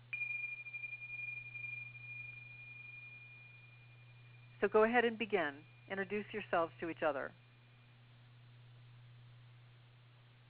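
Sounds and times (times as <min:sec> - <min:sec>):
single chime struck, clear high tone ringing: 0:00.0 - 0:05.9
steady low hum: 0:00.0 - 0:10.4
speech: 0:04.6 - 0:07.4.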